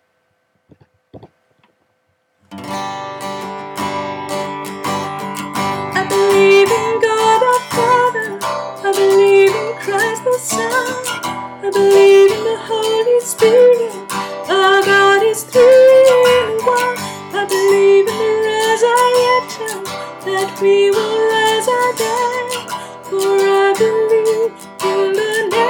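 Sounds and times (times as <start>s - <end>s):
soprano singing: 5.9s - 25.6s.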